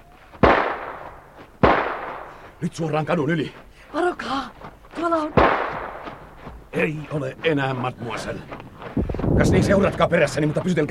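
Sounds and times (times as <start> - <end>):
loud gunshots with decay: 0.4 - 2.5, 5.3 - 6.3
speech: 2.6 - 3.6, 6.8 - 8.7, 9.4 - 10.9.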